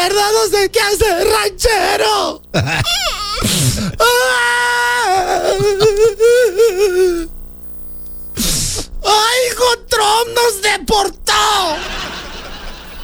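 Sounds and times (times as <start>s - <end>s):
speech: 0.0s - 7.3s, 9.1s - 12.1s
laughter: 2.6s - 3.4s, 11.6s - 13.0s
woman crying and sobbing: 2.6s - 7.3s.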